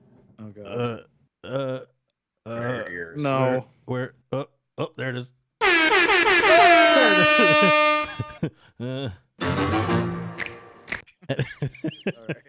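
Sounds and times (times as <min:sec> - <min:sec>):
speech: 0:00.4 - 0:05.4, 0:07.1 - 0:10.0, 0:11.3 - 0:12.4
air horn blaring: 0:05.6 - 0:08.3
laughter: 0:06.5 - 0:08.6, 0:11.3 - 0:12.4.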